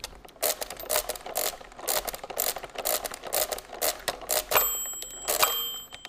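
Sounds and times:
crank of a hand-cranked mechanical calculating machine clattering and ratcheting: 0:00.0 - 0:06.0
bell-like ring of a mechanical calculating machine: 0:04.6 - 0:06.0.

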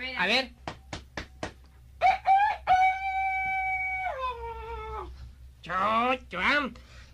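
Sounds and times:
speech: 0:00.2 - 0:00.6, 0:05.7 - 0:06.9
rooster crowing: 0:02.0 - 0:05.1.

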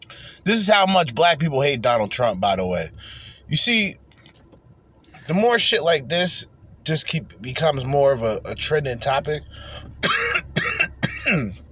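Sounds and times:
speech: 0:00.1 - 0:04.0, 0:05.3 - 0:10.5, 0:11.2 - 0:11.6
harsh raspy coughing while smoking a joint: 0:10.0 - 0:11.6.

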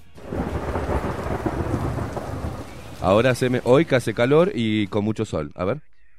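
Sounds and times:
deep rolling rumble of thunder in a sound effect: 0:00.2 - 0:04.6
heavy rain pouring in a thunderstorm sound effect: 0:00.2 - 0:04.9
speech: 0:03.0 - 0:05.9.

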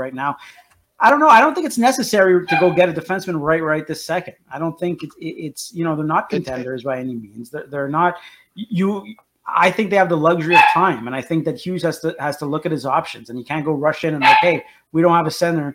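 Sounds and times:
speech: 0:00.0 - 0:15.7
dog barking: 0:10.5 - 0:11.0, 0:14.2 - 0:14.6.

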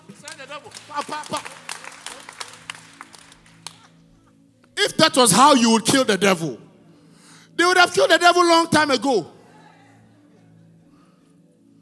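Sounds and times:
congregation clapping hands: 0:00.0 - 0:04.0
speech: 0:00.6 - 0:01.6, 0:04.8 - 0:06.6, 0:07.8 - 0:09.4.

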